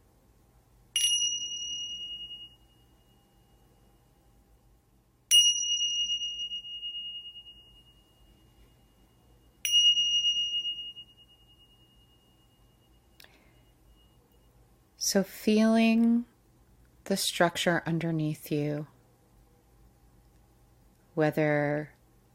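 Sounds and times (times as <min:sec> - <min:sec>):
meditation bell strikes: 0:01.0 - 0:03.1, 0:05.3 - 0:08.8, 0:09.6 - 0:12.9
speech: 0:15.0 - 0:16.3, 0:17.1 - 0:18.9, 0:21.2 - 0:22.0.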